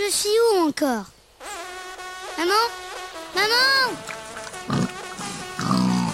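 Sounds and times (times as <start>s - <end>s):
speech: 0.1s - 1.1s, 2.4s - 4.8s
wild boar grunting while charging in the countryside: 4.5s - 6.1s.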